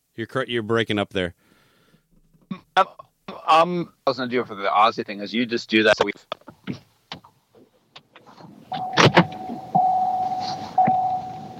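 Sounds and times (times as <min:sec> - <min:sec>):
speech: 0:00.2 - 0:01.4, 0:02.8 - 0:06.8
car beeping: 0:08.6 - 0:11.5.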